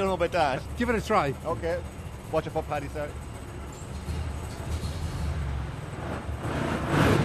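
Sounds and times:
old vehicle engine rumbling: 0.0s - 7.2s
speech: 0.1s - 3.3s.

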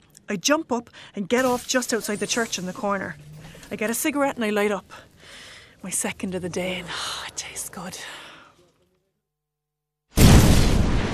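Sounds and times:
speech: 0.3s - 8.2s
loud explosion: 10.2s - 11.1s.

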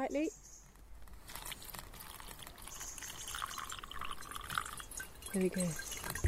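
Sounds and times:
speech: 0.0s - 0.5s, 5.3s - 5.9s
water trickling through a small hole into a plastic cup: 1.2s - 6.2s.

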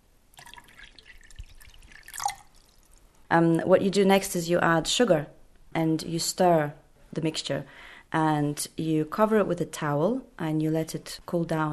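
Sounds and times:
cold water trickling and splashing into a bucket: 0.3s - 3.1s
speech: 3.3s - 11.7s.

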